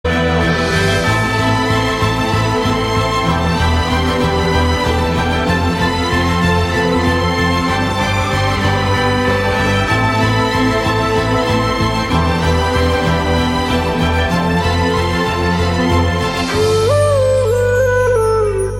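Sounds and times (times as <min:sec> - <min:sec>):
flute background music: 0:00.1 - 0:18.7.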